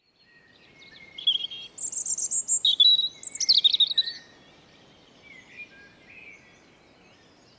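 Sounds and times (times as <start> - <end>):
European robin Erithacus rubecula singing: 0.8 - 4.2.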